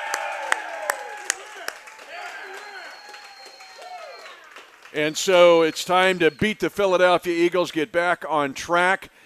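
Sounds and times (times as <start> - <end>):
scattered sharp claps: 0.0 - 6.7
live crowd at a store cheering and whooping: 0.0 - 7.2
speech: 4.9 - 9.2.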